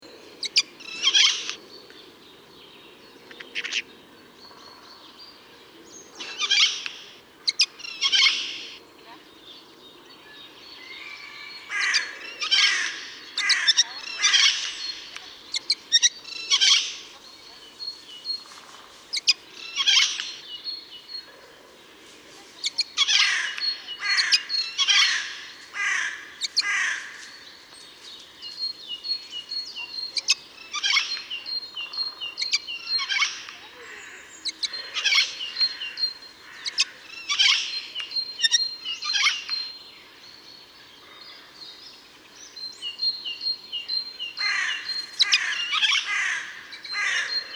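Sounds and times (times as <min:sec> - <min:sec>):
Eurasian jay calling in Landshut: 0:00.4 - 0:01.6, 0:06.2 - 0:08.8, 0:10.8 - 0:39.8, 0:42.7 - 0:47.5.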